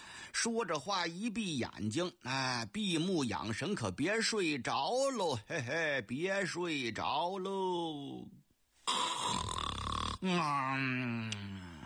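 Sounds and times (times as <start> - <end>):
speech: 0.4 - 9.5, 10.2 - 11.5
man imitating a loud snore: 8.8 - 11.8.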